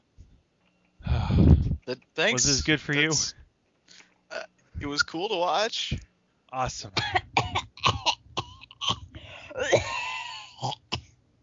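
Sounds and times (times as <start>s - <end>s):
strained wheezing: 1.0s - 1.8s, 7.0s - 11.0s
speech: 1.9s - 3.4s, 4.8s - 7.3s
person coughing after freeze-dried space ice cream went down the wrong way: 6.9s - 11.1s
throat clearing: 7.0s - 11.1s.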